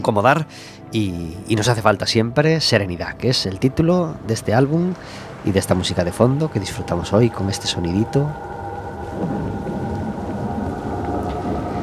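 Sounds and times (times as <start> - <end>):
speech: 0.0 - 8.6, 9.2 - 9.5
steady rain: 0.0 - 11.8
faint sustained tone: 0.8 - 11.8
deep rolling rumble of thunder: 3.6 - 11.8.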